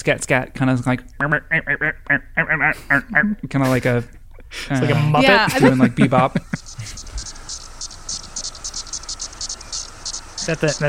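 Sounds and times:
speech: 0.0 - 7.3, 10.4 - 10.8
laughter: 4.6 - 7.2
Magicicada septendecula periodical cicada chorus buzzing: 6.2 - 10.8.

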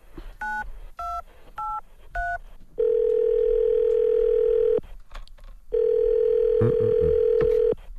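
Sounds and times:
long steady phone ringback tones: 0.4 - 4.8, 5.7 - 7.8.

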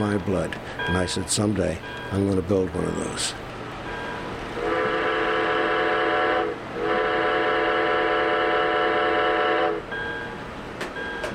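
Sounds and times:
speech: 0.0 - 3.5
steam locomotive low rumbling: 0.0 - 11.3
steam train whistle chord blasts: 4.6 - 9.9.

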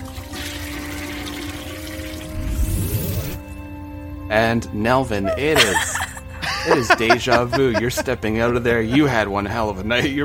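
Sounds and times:
toilet flushing: 0.0 - 3.4
speech: 4.3 - 6.0, 6.6 - 10.2
laughter: 5.2 - 10.2.

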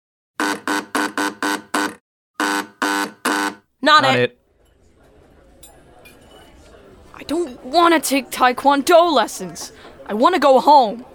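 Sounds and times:
loud harsh buzzer blaring: 0.4 - 4.3
speech: 3.8 - 4.4, 7.3 - 11.1.

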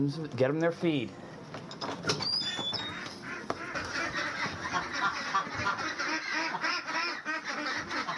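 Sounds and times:
speech: 0.0 - 1.9
high bird chirps: 2.2 - 3.2
flock of pastured ducks quacking outdoors on a ranch in Vintondale Pennsylvania: 2.8 - 8.1.

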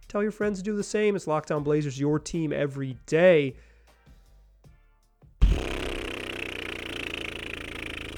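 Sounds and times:
speech: 0.1 - 3.7
deflating sound effect of rushing air hissing and sputtering: 5.4 - 8.1.

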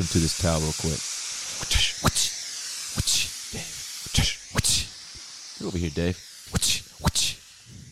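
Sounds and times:
speech: 0.0 - 2.3, 5.6 - 6.8
hissing steam bursts in a steam room: 0.0 - 7.9.

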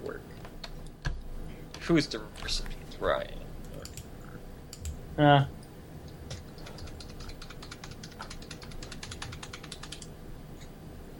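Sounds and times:
speech: 1.9 - 3.4, 5.2 - 5.6
typing on a computer keyboard: 6.3 - 10.1.

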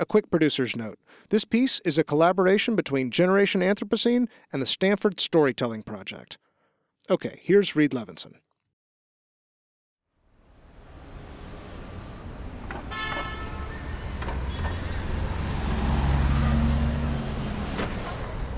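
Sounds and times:
speech: 0.0 - 6.4, 7.0 - 8.4
steady traffic rumble at a bus station in Ulaanbaatar Mongolia: 10.4 - 18.5
short tonal horn or brake squeal: 12.9 - 18.4.

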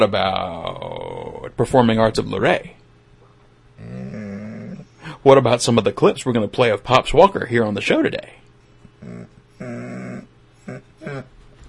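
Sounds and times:
speech: 0.0 - 0.7, 1.4 - 2.8, 5.2 - 8.4
small dog whimpering hoarsely: 3.8 - 4.9, 9.0 - 11.3.

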